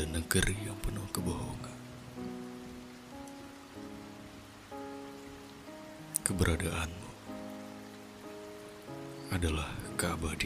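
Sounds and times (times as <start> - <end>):
speech: 0.0 - 1.7, 6.3 - 7.0, 9.3 - 10.4
steady rain pattering on a surface: 0.0 - 10.4.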